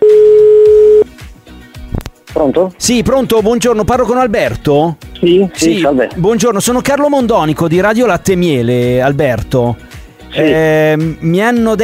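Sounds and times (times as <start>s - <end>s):
telephone ringback tone while placing a call: 0.0s - 1.1s
soft music: 0.1s - 11.8s
speech: 2.4s - 11.8s.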